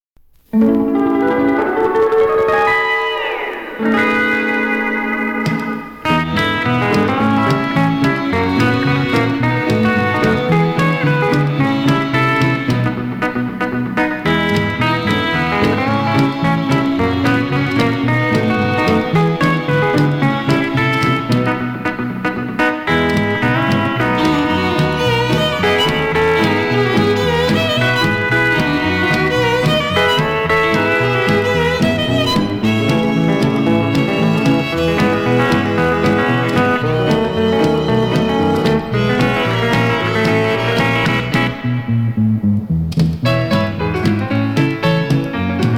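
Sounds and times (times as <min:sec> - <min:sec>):
guitar: 0:00.2 - 0:45.7.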